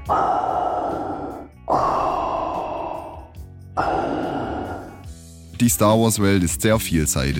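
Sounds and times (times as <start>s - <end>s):
pitched-down filtered respirator breathing effect: 0.0s - 5.2s
speech: 0.1s - 0.3s, 5.6s - 7.3s.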